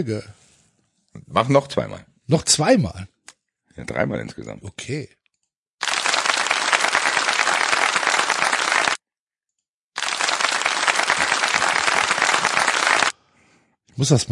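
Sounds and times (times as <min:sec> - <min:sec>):
speech: 0:00.0 - 0:00.4, 0:01.2 - 0:03.1, 0:03.8 - 0:05.2, 0:14.0 - 0:14.2
crowd applause sound effect: 0:05.8 - 0:09.0, 0:10.0 - 0:13.1.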